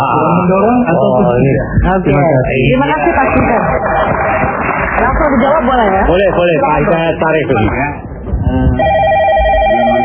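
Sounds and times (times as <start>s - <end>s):
speech: 0.0s - 9.0s
telephone ringing with electronic tone for incoming call: 8.8s - 10.0s.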